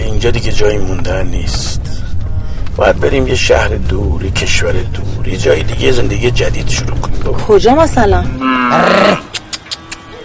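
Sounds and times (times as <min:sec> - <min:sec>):
speech: 0:00.2 - 0:02.0, 0:02.8 - 0:09.4
cow mooing: 0:08.4 - 0:09.3.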